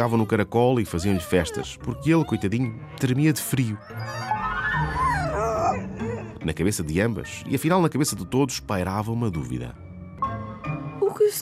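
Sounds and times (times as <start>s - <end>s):
speech: 0.0s - 4.9s, 6.4s - 9.9s, 11.2s - 11.3s
dog growling with low rumbling snarl: 0.0s - 6.5s.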